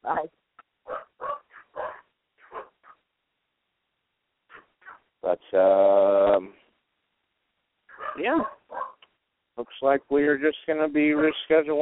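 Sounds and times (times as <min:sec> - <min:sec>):
dogs barking excitedly: 0:00.8 - 0:03.1, 0:04.5 - 0:05.1, 0:07.9 - 0:09.0, 0:11.1 - 0:11.5
speech: 0:05.5 - 0:06.0, 0:09.8 - 0:11.8.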